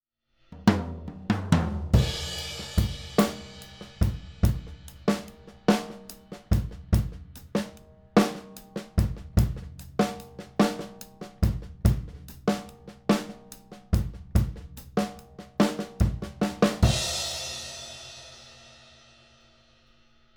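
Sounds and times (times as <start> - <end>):
drum buss with omega processing: 0.4 - 20.3.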